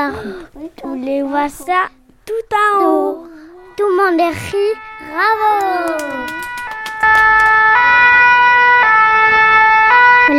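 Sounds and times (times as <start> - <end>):
speech: 0.0 - 6.4, 7.0 - 8.0
two-tone fire engine siren: 3.3 - 10.3.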